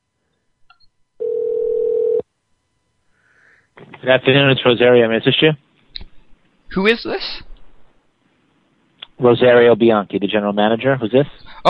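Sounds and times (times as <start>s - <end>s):
ringback tone over a phone line during call transfer: 1.2s - 2.2s
speech: 4.0s - 5.7s, 6.7s - 7.5s, 9.2s - 11.6s.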